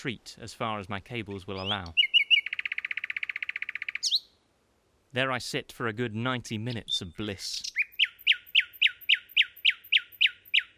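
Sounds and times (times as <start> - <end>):
speech: 0.0 - 2.1, 5.1 - 7.7
nightingale singing: 1.2 - 4.5, 6.5 - 10.7.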